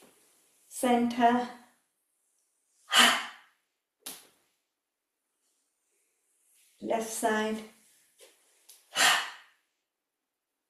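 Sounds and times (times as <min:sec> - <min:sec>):
speech: 0:00.8 - 0:01.6, 0:07.2 - 0:07.8
slow deep breathing in and out: 0:02.8 - 0:03.6, 0:08.9 - 0:09.7.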